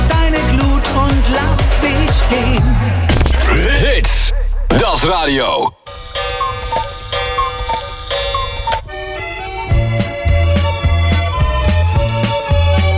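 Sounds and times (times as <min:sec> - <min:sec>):
deep bass line: 0:00.0 - 0:05.8, 0:09.7 - 0:12.9
clock ticking: 0:03.4 - 0:11.3
speech: 0:05.0 - 0:05.8.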